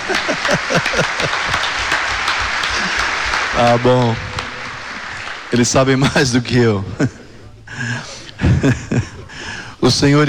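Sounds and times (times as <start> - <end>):
crowd applauding: 0.0 - 6.4
laughter: 0.0 - 9.5
speech: 0.1 - 1.8, 2.8 - 4.3, 5.5 - 7.2, 7.8 - 9.2, 9.8 - 10.2.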